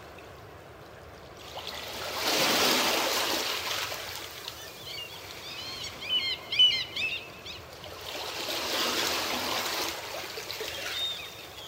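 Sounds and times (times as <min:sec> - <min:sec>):
small waves breaking gently on a shore: 0:00.0 - 0:06.1, 0:07.3 - 0:11.6
birds chirping: 0:04.6 - 0:07.7, 0:10.7 - 0:11.6.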